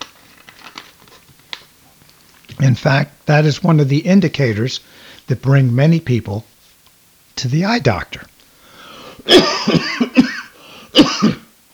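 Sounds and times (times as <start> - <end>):
speech: 2.6 - 6.5, 7.4 - 8.3, 9.2 - 10.0
person coughing: 9.2 - 11.5.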